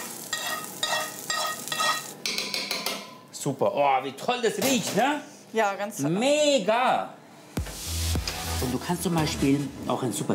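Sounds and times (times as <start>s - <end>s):
meat with roasted onions and parsley sizzling in a pan: 0.0s - 2.2s
speech: 3.4s - 7.2s, 8.7s - 10.3s.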